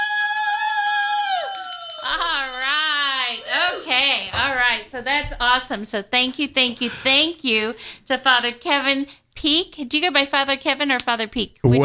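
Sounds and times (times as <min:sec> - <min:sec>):
person cheering: 0:00.0 - 0:04.0
hand bell ringing: 0:00.0 - 0:04.4
speech: 0:04.9 - 0:11.8.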